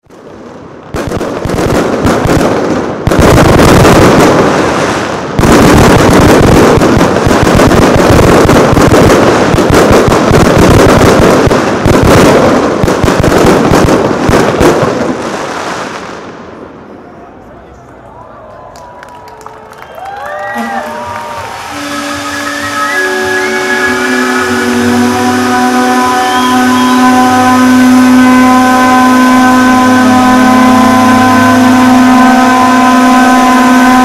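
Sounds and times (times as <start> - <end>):
end of fireworks: 0.0 - 18.0, 20.0 - 34.0
sirens: 18.1 - 34.0.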